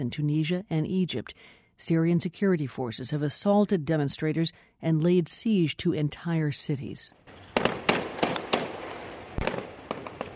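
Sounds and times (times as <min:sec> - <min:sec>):
speech: 0:00.0 - 0:07.8
bursts of gunfire in a besieged city: 0:07.4 - 0:10.3.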